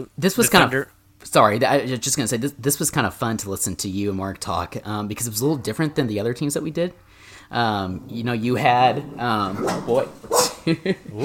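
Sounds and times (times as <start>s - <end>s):
speech: 0.0s - 11.2s
dogs barking: 9.0s - 10.7s.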